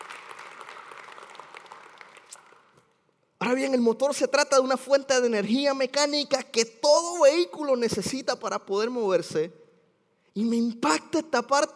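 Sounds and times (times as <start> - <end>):
crowd applauding during a sermon: 0.0 - 2.8
speech: 3.4 - 9.6, 10.4 - 11.7.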